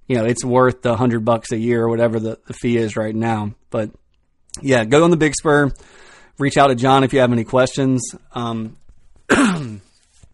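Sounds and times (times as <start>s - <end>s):
speech: 0.1s - 9.6s
loud throat-clearing cough: 9.3s - 10.0s.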